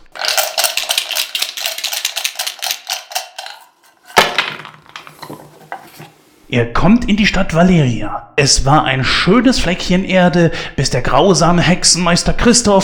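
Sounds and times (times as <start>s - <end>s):
dice clattering on a hard table surface: 0.0s - 5.4s
speech: 6.5s - 12.8s.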